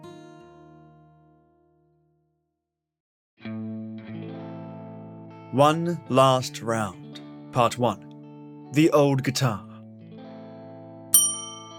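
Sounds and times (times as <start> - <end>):
speech: 5.5 - 7.0, 7.6 - 8.1, 8.7 - 9.7
hanging bell ringing: 11.2 - 11.7.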